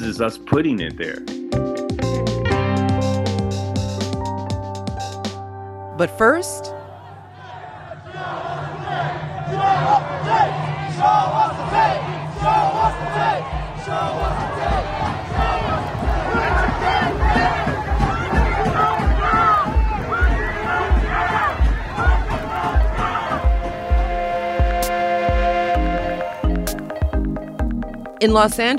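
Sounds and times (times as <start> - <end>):
speech: 0.0 - 1.7, 6.0 - 6.8, 28.2 - 28.7
steady rhythmic beat: 0.0 - 5.4, 6.9 - 28.7
crowd of hundreds of protesters in Los Angeles chanting in unison while marching: 6.8 - 26.8.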